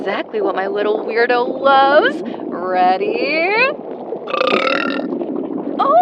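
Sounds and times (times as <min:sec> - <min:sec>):
speech: 0:00.0 - 0:05.2
long loud drawn-out burp: 0:04.2 - 0:05.2.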